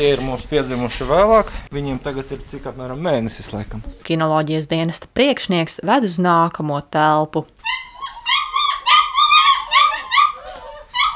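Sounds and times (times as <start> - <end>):
speech: 0.0 - 7.9
German shepherd puppies yipping and whining: 7.6 - 11.1.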